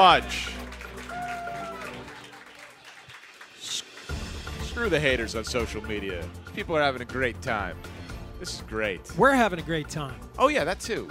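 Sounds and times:
speech: 0.0 - 0.6, 4.8 - 11.0
live crowd applauding: 0.0 - 6.0.

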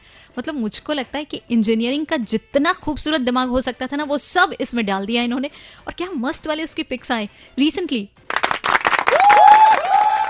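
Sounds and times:
speech: 0.4 - 8.4
crowd applauding: 8.3 - 10.2.

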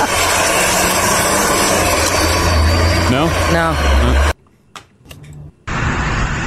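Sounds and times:
car engine with heavily modified exhaust roaring: 0.0 - 4.4, 5.2 - 6.4
speech: 3.2 - 4.3.

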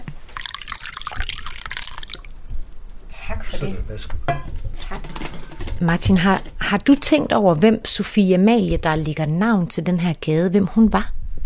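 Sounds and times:
coffee being poured into a cup: 0.3 - 3.1
speech: 3.3 - 11.2.

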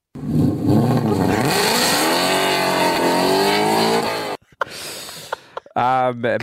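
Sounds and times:
car engine revving while doing donuts: 0.2 - 4.4.

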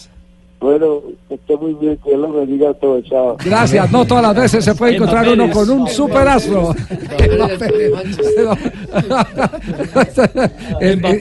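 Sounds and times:
speech: 0.6 - 11.2
laughter: 6.6 - 11.2
phone disconnect tone beeps: 7.2 - 8.6.

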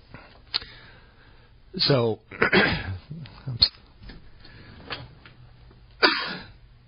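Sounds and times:
speech: 1.7 - 3.7
man clearing his throat: 2.3 - 3.1, 6.0 - 6.6
man coughing: 2.3 - 3.1, 6.0 - 6.6.

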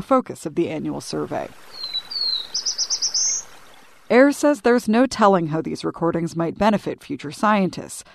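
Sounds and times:
speech: 0.0 - 1.8, 4.1 - 8.1
soft outdoor hiss: 0.0 - 8.1
songbird singing in a forest: 0.6 - 4.6.

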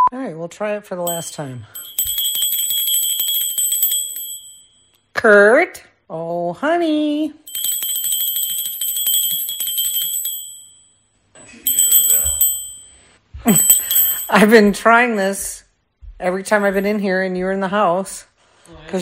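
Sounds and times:
speech: 0.2 - 2.0, 5.2 - 7.4, 13.4 - 15.6, 16.2 - 19.0
small hand bell ringing in a house: 1.1 - 4.9, 7.5 - 15.2, 16.6 - 17.0.

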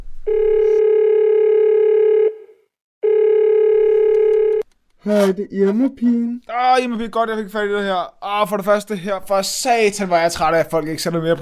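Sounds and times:
telephone ringback tone: 0.3 - 4.6
speech: 5.0 - 11.3.

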